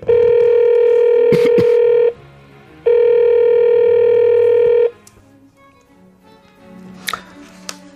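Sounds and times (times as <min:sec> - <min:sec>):
telephone ringback tone: 0:00.0 - 0:02.2, 0:02.9 - 0:05.0.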